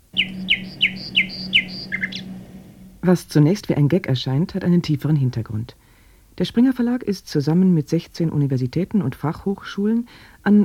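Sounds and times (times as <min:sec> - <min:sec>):
bird call played back from a computer: 0:00.0 - 0:03.0
steady low electrical hum: 0:00.0 - 0:05.3
speech: 0:03.0 - 0:05.8, 0:06.4 - 0:10.6.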